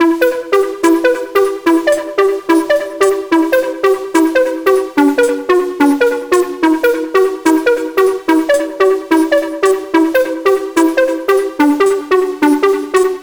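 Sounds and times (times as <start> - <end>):
modern techno lead loop: 0.0 - 13.2.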